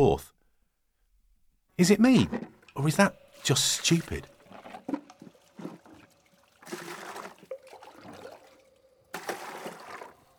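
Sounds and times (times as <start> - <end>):
speech: 0.1 - 0.3, 1.8 - 4.3
water pouring and splashing: 2.3 - 10.3.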